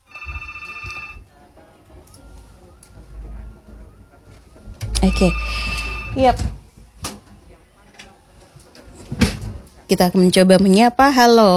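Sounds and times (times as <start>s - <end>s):
telephone ringing with a bright electronic trill on a radio phone line: 0.0s - 1.3s, 5.0s - 6.4s
speech: 5.0s - 6.6s, 9.9s - 11.5s.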